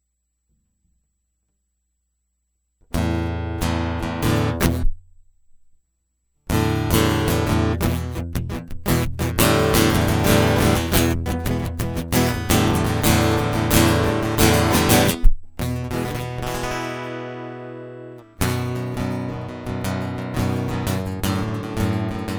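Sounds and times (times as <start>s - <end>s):
guitar interlude: 2.9s - 5.0s, 6.5s - 22.3s.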